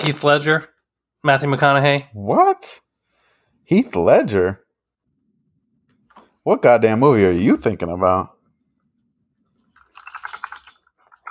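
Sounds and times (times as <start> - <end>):
speech: 0.0 - 2.8, 3.7 - 4.6, 6.4 - 8.3
loud clacky keyboard typing: 9.8 - 11.2.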